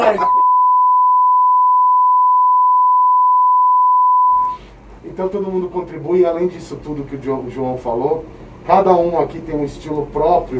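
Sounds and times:
censor bleep tone: 0.2 - 4.6
speech: 5.2 - 10.5.

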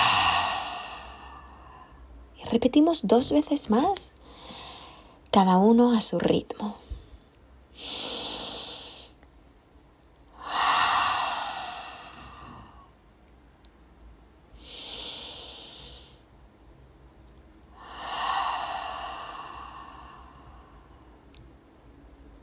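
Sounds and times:
airy exhale through the mouth: 0.0 - 1.9, 7.8 - 9.2, 10.4 - 12.9, 14.6 - 16.2, 17.8 - 20.9
deep nasal inhale: 0.0 - 2.1, 4.2 - 5.2, 6.8 - 9.2, 10.3 - 13.0, 14.6 - 16.3, 17.7 - 21.2
speech: 2.5 - 4.2, 5.4 - 6.8, 7.8 - 8.1.

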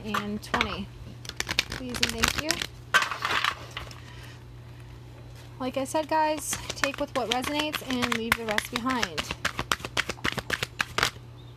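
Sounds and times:
speech: 0.0 - 1.0, 1.7 - 2.8, 5.6 - 9.4
tarot cards being shuffled and drawn: 1.3 - 2.7, 6.3 - 11.2.

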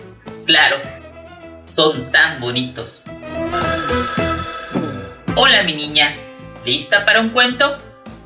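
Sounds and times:
speech: 0.5 - 1.0, 1.7 - 3.1, 5.4 - 7.9
telephone bell ringing: 3.5 - 5.3.

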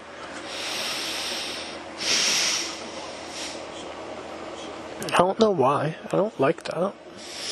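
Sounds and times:
breathing through a blocked nose: 0.4 - 3.7, 7.2 - 7.5
speech: 5.0 - 7.3.

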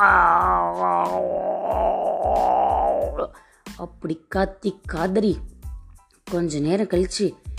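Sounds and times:
person imitating a tiger crying out in pain: 0.0 - 3.3
speech: 3.3 - 5.5, 6.3 - 7.5.

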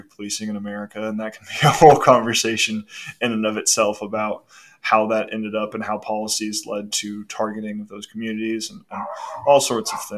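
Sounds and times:
speech: 0.1 - 10.1
dog barking and yipping in the background: 9.0 - 10.1.

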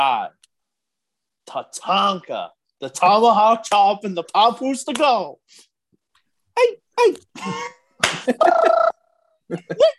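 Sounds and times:
speech: 0.0 - 0.4, 1.5 - 5.7, 6.6 - 9.9
hand slapping skin: 8.0 - 8.3.

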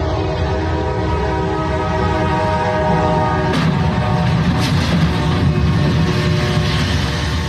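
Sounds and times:
train rumbling through a crossing: 0.0 - 7.4
bang: 3.5 - 7.4
heavy clattering noise: 3.5 - 7.4
sharp crash of a train hitting a truck left on the crossing: 3.5 - 7.4.

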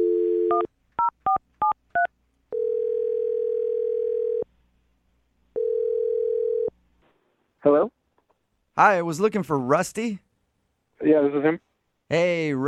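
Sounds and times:
telephone dial tone: 0.0 - 0.7, 2.5 - 4.4, 5.6 - 6.7
speech: 7.6 - 8.0, 8.8 - 10.2, 11.0 - 12.6.

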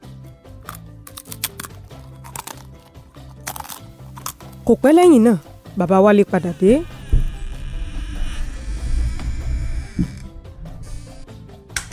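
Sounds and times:
kola nut being chewed with crisp crunches: 0.6 - 5.8
low steady humming tonal background: 4.6 - 11.9
speech: 4.7 - 6.9.

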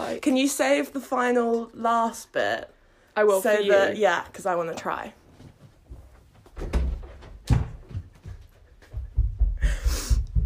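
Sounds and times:
speech: 0.1 - 5.2
woman running footsteps across a floor to answer the door: 6.0 - 10.4.

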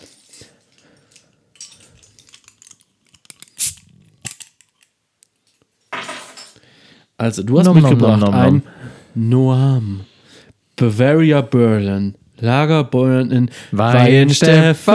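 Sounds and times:
bunch of metal keys and shopping-cart chip jingling: 0.0 - 6.6
handling noise: 1.6 - 6.2
speech: 7.2 - 10.1, 10.8 - 14.9.

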